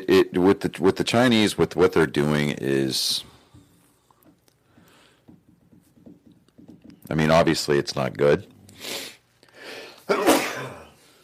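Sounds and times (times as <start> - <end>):
speech: 0.0 - 3.3, 7.1 - 9.1
forceful sneeze with sharp intake of breath: 10.1 - 11.0.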